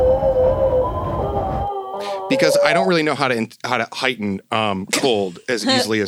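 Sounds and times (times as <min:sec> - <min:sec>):
ice cream truck tinny musical tone: 0:01.1 - 0:03.0
speech: 0:02.3 - 0:06.0.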